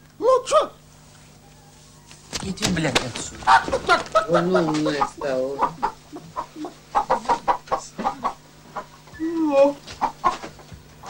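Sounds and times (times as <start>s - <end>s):
low steady hum: 0.0s - 11.0s
speech: 2.4s - 5.9s, 9.5s - 9.8s
human voice imitating a clucking hen: 3.5s - 10.4s.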